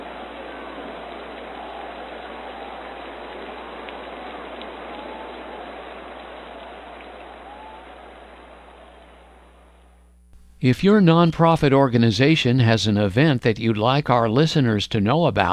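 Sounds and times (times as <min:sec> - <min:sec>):
steady rain falling: 0:00.0 - 0:10.6
speech: 0:10.6 - 0:15.5.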